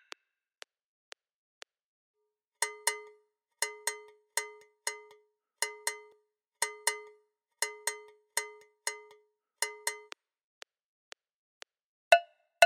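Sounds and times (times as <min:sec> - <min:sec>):
Latin American iyesa rhythm music: 0:02.6 - 0:10.1, 0:12.1 - 0:12.6.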